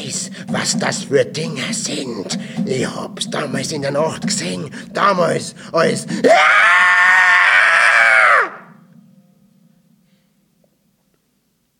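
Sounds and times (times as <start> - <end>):
speech: 0.0 - 7.0
old man's harsh inhuman-sounding scream: 6.2 - 8.8.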